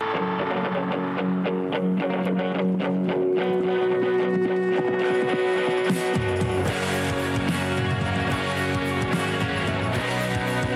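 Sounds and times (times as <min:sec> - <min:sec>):
rock song with distorted electric guitars, bass and drums on the radio: 0:00.0 - 0:10.7.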